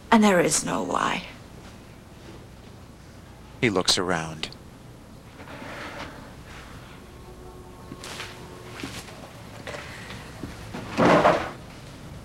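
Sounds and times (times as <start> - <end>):
speech: 0.1 - 1.4, 3.6 - 4.6
drawer scraping slide: 5.4 - 6.8, 8.0 - 11.6.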